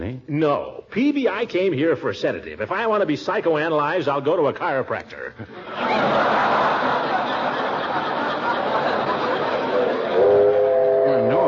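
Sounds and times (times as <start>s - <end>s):
speech: 0.4s - 6.5s
laughter: 5.4s - 11.4s
train whistle: 10.2s - 11.4s.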